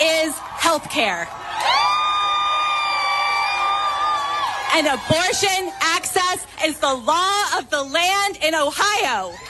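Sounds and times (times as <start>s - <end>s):
crowd of activists cheering and celebrating: 0.0s - 6.4s
speech: 0.4s - 1.5s, 4.7s - 9.4s.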